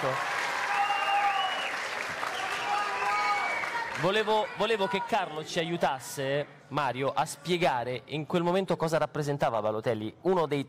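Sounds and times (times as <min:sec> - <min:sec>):
speech: 0:00.0 - 0:00.3, 0:04.0 - 0:10.6
audience applause: 0:00.0 - 0:04.9.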